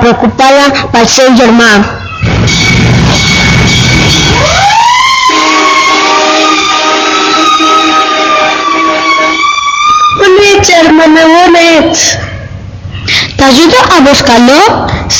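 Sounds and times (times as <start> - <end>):
speech: 0.0 - 3.0, 11.0 - 12.2, 13.4 - 15.1
emergency ambulance siren wailing: 2.0 - 10.9
rough rumble: 2.2 - 4.8.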